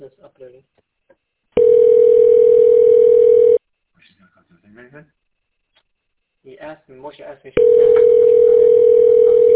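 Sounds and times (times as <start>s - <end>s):
telephone line tone: 1.6s - 3.6s, 7.6s - 9.5s
speech: 7.2s - 8.3s.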